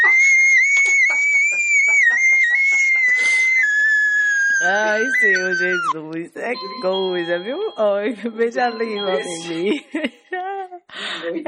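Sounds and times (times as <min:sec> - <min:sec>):
laughter: 0:00.0 - 0:05.9, 0:09.0 - 0:10.8
loud high-pitched scream: 0:00.0 - 0:05.9
speech: 0:04.6 - 0:10.2, 0:11.2 - 0:11.4.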